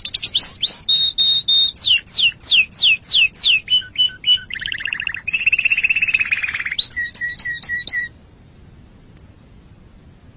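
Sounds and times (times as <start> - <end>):
canary singing a fast rolling trill: 0.0 - 8.2.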